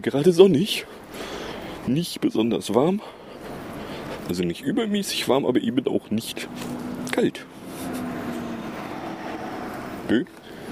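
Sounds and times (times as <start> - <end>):
speech: 0.0 - 3.2, 4.3 - 7.5, 10.1 - 10.4
car passing outdoors: 6.0 - 10.7.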